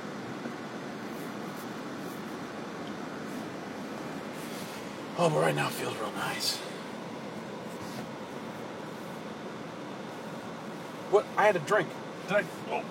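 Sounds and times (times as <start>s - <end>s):
air conditioning blowing hard: 0.0s - 12.8s
speech: 5.2s - 6.8s, 11.1s - 12.8s.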